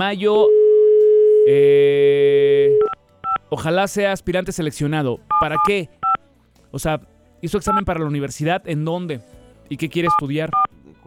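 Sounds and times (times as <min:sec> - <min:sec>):
speech: 0:00.0 - 0:00.6, 0:01.5 - 0:02.9, 0:03.5 - 0:06.0, 0:06.7 - 0:11.0
loud full multi-tone telephone signal: 0:00.4 - 0:03.4.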